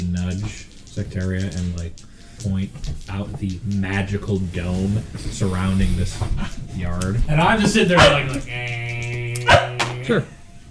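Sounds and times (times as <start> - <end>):
speech: 0.4 - 8.8, 10.1 - 10.4
voice imitating a dog barking: 8.0 - 10.1.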